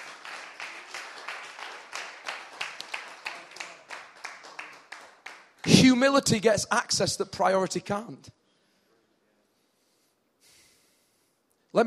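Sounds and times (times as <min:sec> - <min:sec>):
church audience clapping: 0:00.0 - 0:06.2
speech: 0:05.7 - 0:08.4.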